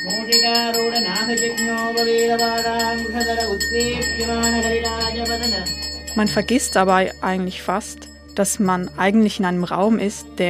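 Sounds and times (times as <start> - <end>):
priest chanting a Sanskrit mantra in a droning sustained voice: 0.0 - 6.5
priest ringing a small hand bell in a Hindu shrine: 0.0 - 10.4
speech: 0.1 - 10.4.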